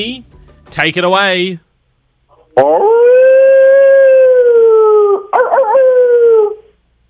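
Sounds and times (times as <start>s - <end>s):
speech: 0.0s - 1.6s, 2.6s - 3.0s
man imitating a wolf howling at the moon: 2.6s - 6.7s.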